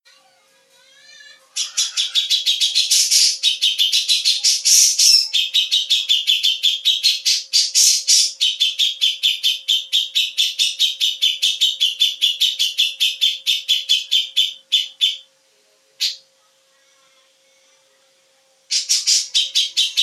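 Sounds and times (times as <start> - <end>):
cucak jenggot bird singing: 1.5 - 15.3, 18.7 - 20.0.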